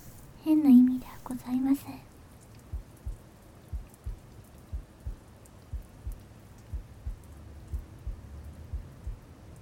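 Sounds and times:
constant hiss: 0.0s - 9.6s
speech: 0.4s - 2.1s
simulated mechanical heartbeat thumping: 2.7s - 9.3s.

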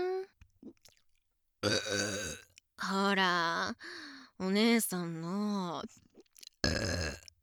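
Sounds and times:
soft mouth clicks and smacking: 0.4s - 1.2s, 6.1s - 7.4s
woman burping: 1.6s - 2.5s, 6.6s - 7.2s
speech: 1.6s - 6.1s.

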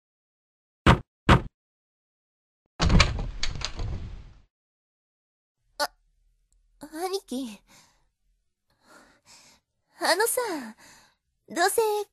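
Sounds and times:
sharp knocks on a room door: 0.9s - 1.5s
door click: 2.8s - 4.2s
speech: 6.9s - 7.9s, 10.0s - 12.1s.

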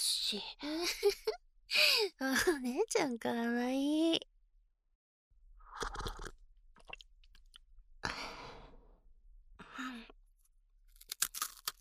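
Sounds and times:
speech: 0.3s - 4.3s, 5.8s - 6.2s
crunching of crisp Japanese rice crackers eaten as a tea snack: 10.9s - 11.7s.

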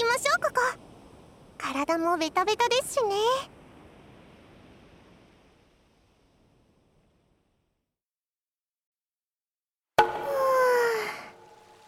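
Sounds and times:
speech: 1.8s - 3.6s
water splashing in a private open-air hot spring bath: 10.0s - 11.8s.

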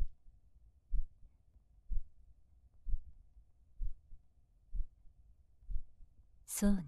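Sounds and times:
heartbeat: 0.9s - 1.2s, 1.8s - 2.2s, 2.8s - 3.2s, 3.8s - 5.0s, 5.6s - 6.1s
speech: 6.6s - 6.8s.

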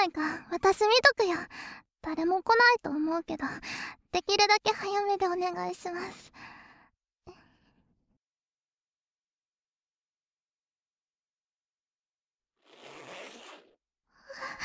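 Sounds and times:
speech: 0.0s - 6.5s
clothing zipper being unzipped: 12.6s - 13.8s.

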